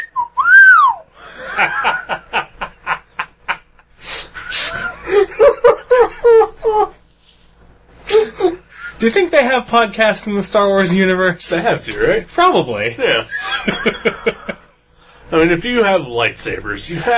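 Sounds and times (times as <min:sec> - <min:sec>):
human voice imitating an astromech droid's whistles, beeps and trills: 0:00.0 - 0:01.0
laughter: 0:01.2 - 0:07.0, 0:13.0 - 0:14.8
speech: 0:09.0 - 0:14.5, 0:15.4 - 0:17.1.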